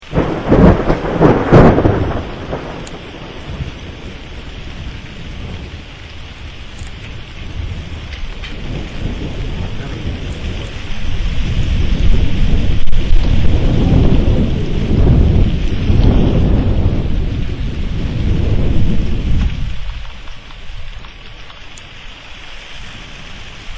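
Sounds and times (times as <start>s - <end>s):
thunder crack: 0.0s - 21.8s.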